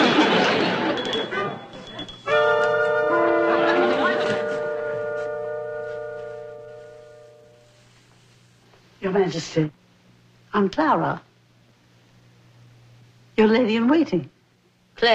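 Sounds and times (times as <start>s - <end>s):
laughter: 0.0s - 1.8s, 3.2s - 4.6s
bell ringing: 0.7s - 7.6s
speech: 9.2s - 9.8s, 10.5s - 11.3s, 13.4s - 14.3s, 15.0s - 15.1s.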